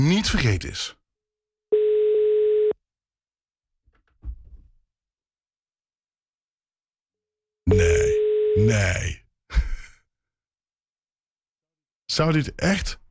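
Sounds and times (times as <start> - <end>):
speech: 0.0 - 1.0, 8.6 - 9.6, 12.1 - 13.0
telephone ringback tone of outgoing call: 1.7 - 2.8, 7.8 - 8.6.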